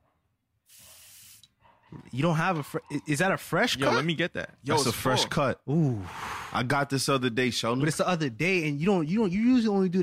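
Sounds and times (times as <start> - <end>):
pump-style olive oil mister spraying: 0.7 - 1.5
speech: 1.9 - 10.0.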